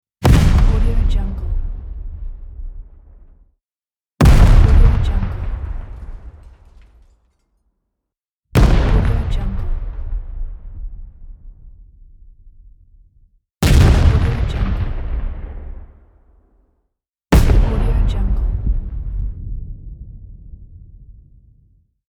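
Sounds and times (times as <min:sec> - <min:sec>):
explosions: 0:00.2 - 0:03.4, 0:04.2 - 0:07.2, 0:08.6 - 0:13.0, 0:13.6 - 0:16.1, 0:17.4 - 0:21.6.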